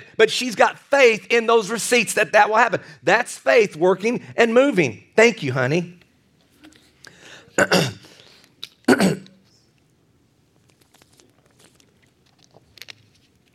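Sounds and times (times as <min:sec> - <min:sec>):
speech: 0:00.2 - 0:06.0, 0:07.6 - 0:08.0, 0:08.9 - 0:09.2
faint small movements: 0:06.0 - 0:07.2, 0:08.1 - 0:13.5
man coughing: 0:07.4 - 0:08.2, 0:08.8 - 0:09.4
man clearing throat: 0:07.6 - 0:08.1, 0:08.8 - 0:09.4.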